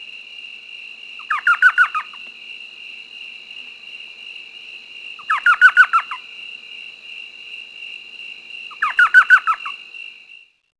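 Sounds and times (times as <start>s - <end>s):
Elf owl giving rapid yelping notes: 1.2s - 2.2s, 5.2s - 6.2s, 8.7s - 9.8s.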